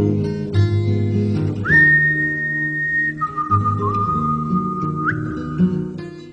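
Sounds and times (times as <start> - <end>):
steady low accompaniment of harmonic instruments: 0.0 - 6.3
song with clear sustained whistled melody: 1.6 - 5.8.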